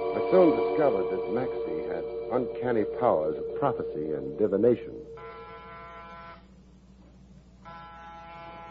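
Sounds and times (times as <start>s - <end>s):
speech: 0.1s - 5.1s
harsh electric door buzzer: 5.2s - 6.5s, 7.7s - 8.6s.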